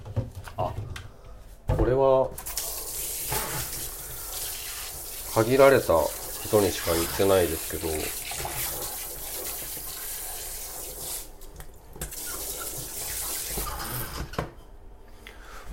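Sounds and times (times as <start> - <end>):
speech: 1.8 - 2.5, 5.4 - 8.2
water coming to a boil: 2.4 - 14.2.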